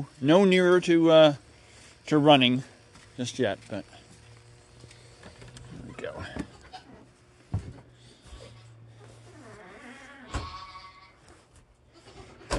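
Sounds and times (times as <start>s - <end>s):
speech: 0.0s - 1.4s, 2.1s - 4.0s
outdoor rustling: 0.0s - 12.5s
goats bleating: 6.1s - 7.1s, 8.2s - 9.2s, 10.0s - 12.5s.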